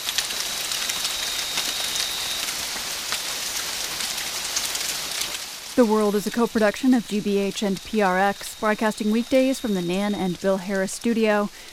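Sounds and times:
tropical rain pouring in Colombia: 0:00.0 - 0:11.7
speech: 0:05.8 - 0:11.7.

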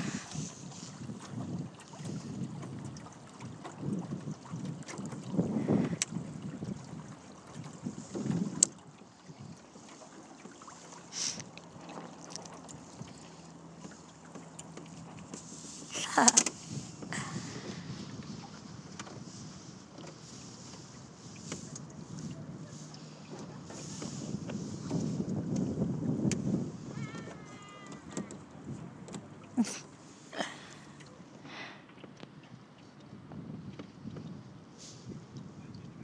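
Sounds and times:
wind buffeting the microphone while sailing into a marina against a headwind: 0:00.0 - 0:09.9, 0:15.0 - 0:29.5, 0:32.5 - 0:36.0
sailing boat moving through water into a marina: 0:00.0 - 0:36.0
faint creaks: 0:26.9 - 0:28.5.

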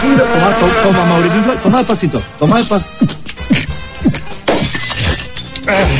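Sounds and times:
speech: 0:00.2 - 0:04.2, 0:05.7 - 0:05.9
drinking glass dropping and shattering: 0:04.4 - 0:05.9.

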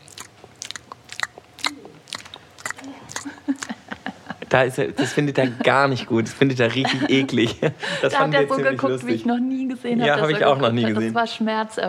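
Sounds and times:
wet lip smacking with an empty mouth: 0:00.0 - 0:04.0
laughter: 0:03.2 - 0:08.1
speech: 0:04.5 - 0:11.8.

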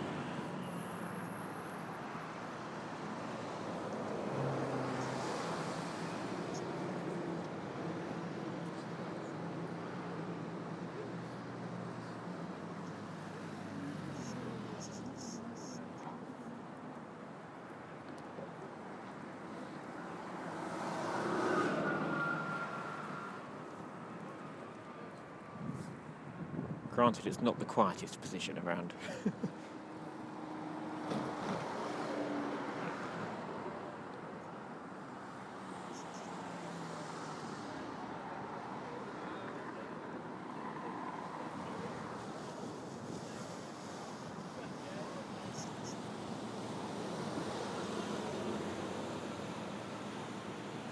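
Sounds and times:
road traffic roar on a city bridge: 0:00.0 - 0:50.8
wind buffeting the microphone: 0:25.6 - 0:27.0
speech: 0:27.0 - 0:29.7.

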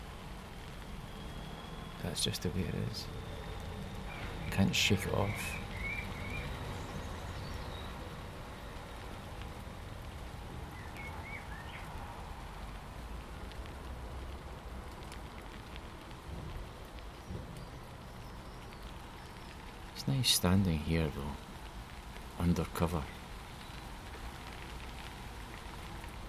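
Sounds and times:
steady rain pattering on a hard surface: 0:00.0 - 0:26.2
faint birdsong: 0:00.4 - 0:09.2, 0:10.2 - 0:13.2, 0:16.6 - 0:25.8
speech: 0:02.0 - 0:03.4, 0:04.6 - 0:05.6, 0:20.2 - 0:21.5, 0:22.4 - 0:23.2.

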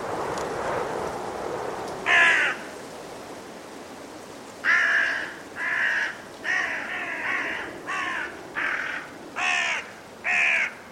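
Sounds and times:
blustery force 6 winter wind in woodland: 0:00.0 - 0:10.8
carrion crows cawing in woodland trees before roosting: 0:02.1 - 0:02.7, 0:04.6 - 0:10.8.

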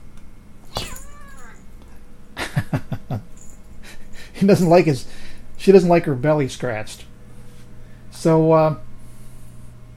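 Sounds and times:
cat meowing: 0:00.7 - 0:01.7
speech: 0:04.4 - 0:07.1, 0:08.2 - 0:08.9.

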